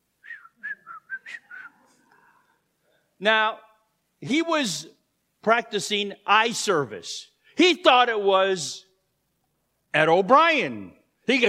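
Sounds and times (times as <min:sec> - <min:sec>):
person whistling a short tune: 0:00.2 - 0:01.8
speech: 0:03.2 - 0:08.9, 0:09.9 - 0:11.4.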